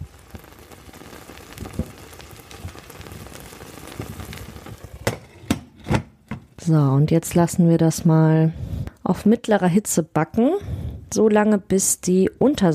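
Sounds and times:
Iranian herb frittata crackling and sizzling in a pan: 0:00.0 - 0:05.8
lid clattering onto a pan of Iranian herb frittata: 0:05.0 - 0:06.5
speech: 0:06.7 - 0:12.7.

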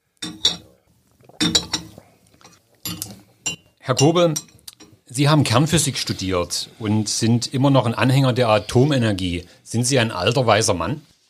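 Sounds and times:
teacups of tea clinking together in a toast: 0:00.2 - 0:05.0
speech: 0:03.9 - 0:04.5, 0:05.1 - 0:11.1.

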